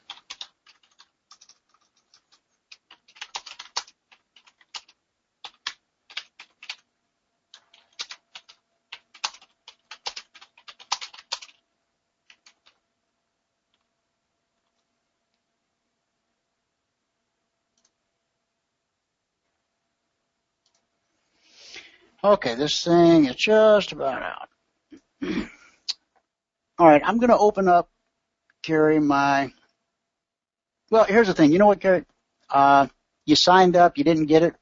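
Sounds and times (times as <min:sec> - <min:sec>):
computer keyboard keystrokes as a message is typed: 0:00.0 - 0:06.9, 0:07.5 - 0:11.6, 0:12.3 - 0:12.8, 0:17.8 - 0:18.0
speech: 0:22.2 - 0:24.4, 0:26.8 - 0:27.9, 0:28.7 - 0:29.6, 0:30.9 - 0:34.6.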